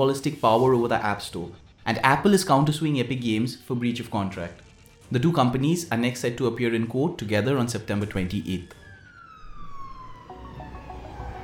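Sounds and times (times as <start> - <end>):
speech: 0.0 - 8.8
ambulance siren wailing: 0.0 - 11.4.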